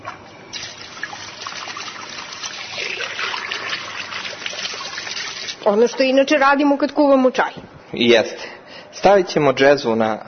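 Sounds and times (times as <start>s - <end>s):
water pouring into a small coffee pot for tea: 0.5s - 5.6s
speech: 5.7s - 10.2s.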